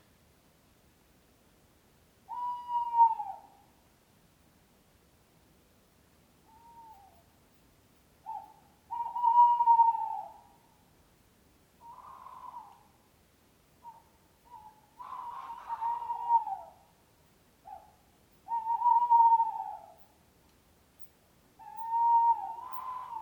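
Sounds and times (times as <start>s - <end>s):
owl hooting: 2.3s - 3.7s, 6.4s - 7.3s, 8.2s - 10.8s, 11.8s - 13.0s, 13.8s - 17.0s, 17.6s - 20.2s, 21.6s - 23.2s.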